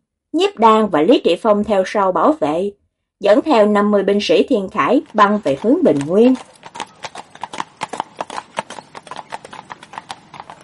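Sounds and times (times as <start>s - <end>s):
speech: 0.3s - 6.8s
horse hooves clip-clopping as a rider approaches on horseback: 3.5s - 10.6s.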